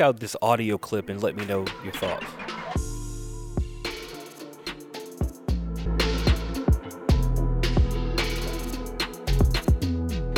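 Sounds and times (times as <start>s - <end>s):
speech: 0.0s - 2.6s
beat-driven music track: 0.0s - 10.3s.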